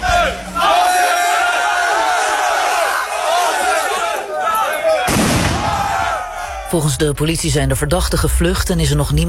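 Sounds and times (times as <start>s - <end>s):
large agitated crowd shouting and chanting at the town hall in Rhenen: 0.0s - 7.1s
loud firework bang: 5.1s - 6.0s
speech: 6.7s - 9.2s.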